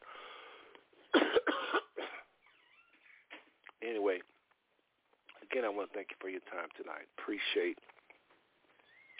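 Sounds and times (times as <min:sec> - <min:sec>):
person coughing: 0:01.1 - 0:02.3
speech: 0:05.6 - 0:08.0.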